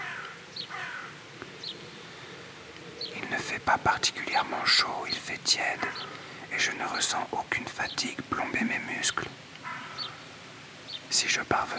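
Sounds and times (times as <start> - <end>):
faint birds chirping: 0.0 - 11.7
soft steady outdoor hush: 0.0 - 11.7
speech: 3.5 - 9.4, 11.1 - 11.7.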